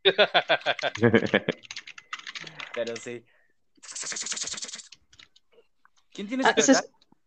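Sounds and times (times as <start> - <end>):
laughter: 0.1 - 1.6
speech: 0.1 - 1.9, 2.8 - 3.4, 6.4 - 6.9
computer keyboard typing: 0.4 - 3.2, 3.9 - 5.5.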